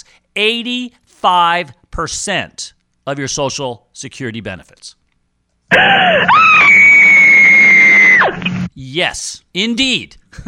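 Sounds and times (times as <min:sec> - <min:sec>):
speech: 0:00.4 - 0:05.0, 0:05.7 - 0:06.9, 0:08.8 - 0:10.4
woman screaming a long loud piercing scream: 0:05.7 - 0:08.4.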